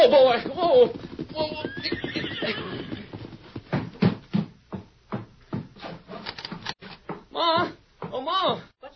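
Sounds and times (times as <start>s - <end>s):
speech: 0.0s - 2.1s
hoofbeats of a ridden horse clopping along a wagon trail on prairie: 0.0s - 8.2s
horse whinnying: 0.8s - 3.4s.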